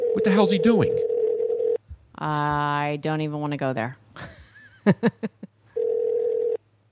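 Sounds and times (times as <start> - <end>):
telephone call ringback tone: 0.0 - 1.8, 5.8 - 6.6
speech: 0.2 - 1.1, 2.2 - 5.4.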